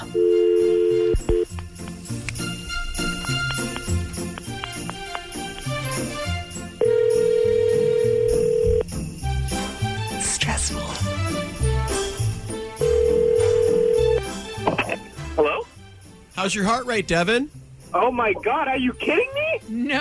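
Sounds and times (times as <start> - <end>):
steady telephone tone: 0.0 - 1.5, 6.8 - 8.8, 12.8 - 14.2
music: 0.0 - 19.9
tinkly electronic telephone dialing sounds: 6.8 - 8.8, 12.8 - 14.2
speech: 16.4 - 19.9.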